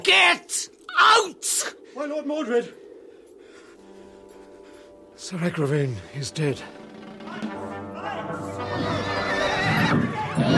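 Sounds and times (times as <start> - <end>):
speech: 0.0 - 2.8, 5.2 - 7.6
horse neighing: 8.5 - 10.5.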